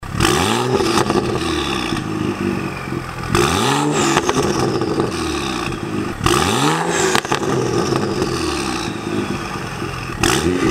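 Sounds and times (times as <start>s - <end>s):
burbles: 0.0s - 10.6s.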